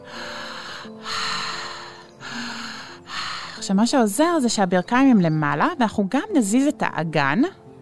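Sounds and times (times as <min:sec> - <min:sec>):
deep breaths through the mouth during a breathing exercise: 0:00.0 - 0:03.7
speech: 0:03.6 - 0:07.6.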